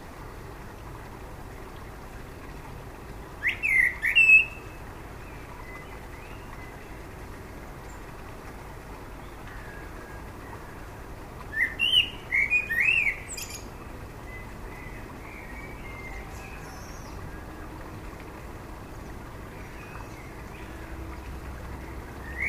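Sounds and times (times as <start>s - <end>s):
Common blackbird Turdus merula singing fluting phrases: 3.4s - 4.6s, 11.5s - 13.7s.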